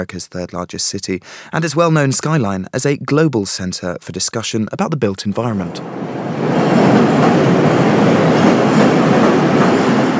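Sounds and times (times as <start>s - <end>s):
speech: 0.0s - 9.2s
elevated train on downtown line clattering along the rails in Chicago: 5.7s - 10.1s.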